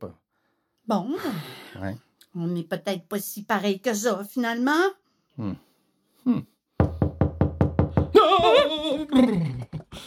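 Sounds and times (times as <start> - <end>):
speech: 0.0 - 0.2, 0.9 - 6.5, 8.2 - 10.0
firm knocks on a door: 6.8 - 8.6
laughter: 8.2 - 10.0.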